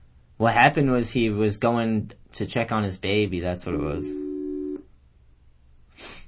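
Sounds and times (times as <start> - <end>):
speech: 0.4 - 4.3
electronic ringing tone of an outgoing call through a phone app: 4.0 - 4.8.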